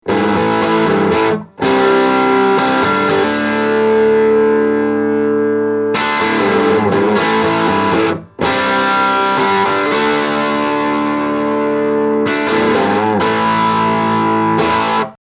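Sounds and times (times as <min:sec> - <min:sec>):
electric guitar: 0:00.0 - 0:15.2.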